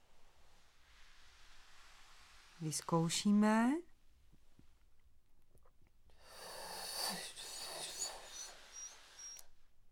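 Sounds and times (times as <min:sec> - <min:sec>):
speech: 0:02.6 - 0:03.9
person inhaling while raising the leg during a breathing exercise: 0:06.2 - 0:09.2.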